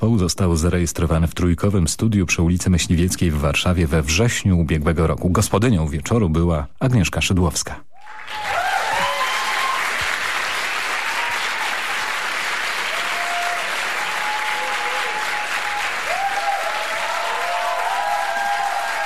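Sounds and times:
speech: 0:00.0 - 0:08.5
studio audience applauding a band: 0:08.0 - 0:19.0.

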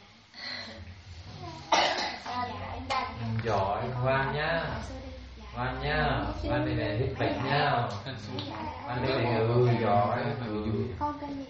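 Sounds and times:
child coughing: 0:01.6 - 0:02.4
speech: 0:03.4 - 0:05.0, 0:05.6 - 0:11.4.

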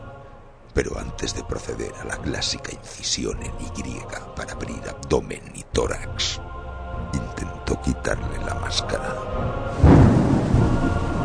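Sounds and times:
speech: 0:00.8 - 0:11.0
loud thunderclap rumbling during a violent storm: 0:08.4 - 0:11.2.

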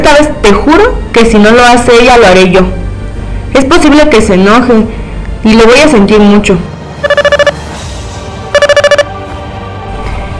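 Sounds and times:
speech: 0:00.0 - 0:02.8, 0:03.5 - 0:07.1
mobile phone ringtone of rapid bright electronic beeps: 0:07.0 - 0:07.6, 0:08.6 - 0:09.1.

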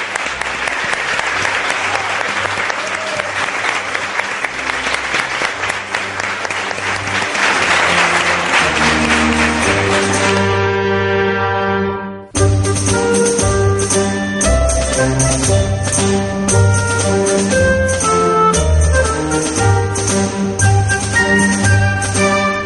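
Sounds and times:
audience applause: 0:00.0 - 0:10.7
sustained musical tones: 0:04.5 - 0:22.6.

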